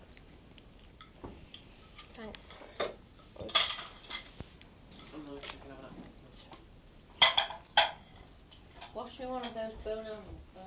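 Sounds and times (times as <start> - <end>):
metal cutlery clinking while cutting an apple: 2.8 - 4.3, 7.2 - 9.6
speech: 9.3 - 10.6.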